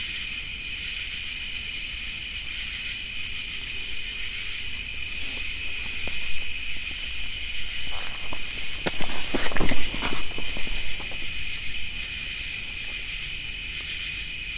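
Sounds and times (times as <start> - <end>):
high buzzing chorus of insects: 0.0 - 14.5
footsteps crunching and thudding: 4.7 - 13.6.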